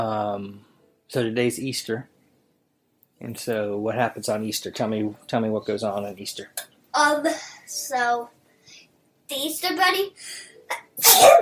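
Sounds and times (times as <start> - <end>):
speech: 0.0 - 2.1, 3.2 - 8.4, 9.3 - 11.3
person sneezing: 10.7 - 11.3.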